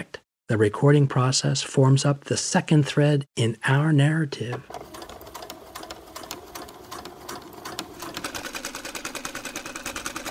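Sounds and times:
speech: 0.0s - 4.9s
sewing machine running with needle clattering: 4.7s - 10.2s.

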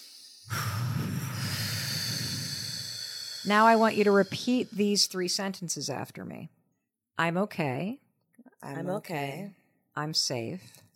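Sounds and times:
deep breath drawn during a calming exercise: 0.0s - 5.4s
speech: 3.4s - 6.6s, 7.2s - 8.0s, 8.6s - 10.8s.

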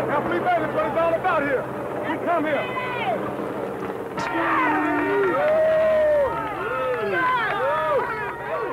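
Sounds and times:
speech: 0.2s - 3.2s, 4.3s - 4.9s
large crowd cheering and shouting outside estate: 4.2s - 8.6s.

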